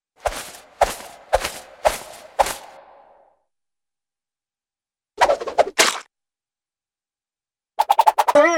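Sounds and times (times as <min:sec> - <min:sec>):
sharp reverberant rapid cartoon swishes: 0:00.3 - 0:03.1, 0:07.8 - 0:08.4.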